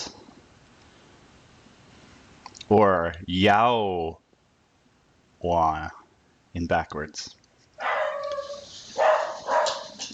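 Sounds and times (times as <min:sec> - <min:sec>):
speech: 0:02.7 - 0:04.2, 0:05.4 - 0:06.0, 0:06.6 - 0:07.4
dog barking: 0:07.8 - 0:10.1.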